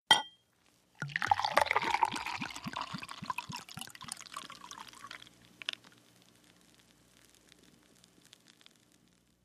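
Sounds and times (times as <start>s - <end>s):
beer poured from a bottle into a glass: 1.0s - 5.8s.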